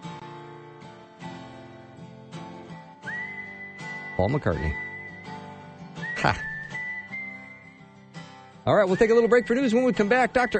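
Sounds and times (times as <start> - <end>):
full instrumental backing music: 0.0 - 10.5
person whistling a tune: 3.0 - 7.9, 8.7 - 10.5
speech: 4.2 - 4.9, 6.2 - 6.5, 8.7 - 10.5.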